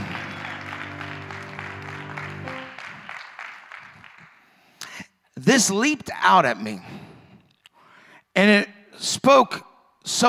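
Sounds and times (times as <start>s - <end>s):
sustained musical chord: 0.0s - 3.1s
audience clapping: 0.0s - 4.9s
speech: 5.5s - 7.0s, 8.4s - 10.2s.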